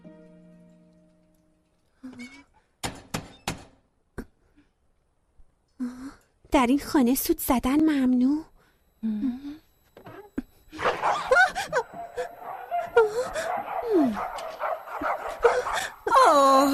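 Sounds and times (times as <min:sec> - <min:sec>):
speech: 0:06.5 - 0:09.4
several dogs barking, yipping and whimpering: 0:10.7 - 0:16.4.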